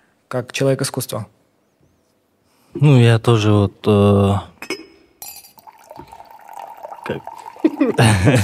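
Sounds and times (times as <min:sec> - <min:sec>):
speech: 0:00.3 - 0:01.4, 0:02.8 - 0:04.7, 0:07.1 - 0:08.4
light glassy clink: 0:04.6 - 0:08.4
tea poured into a glass in a steady trickle: 0:05.4 - 0:08.4.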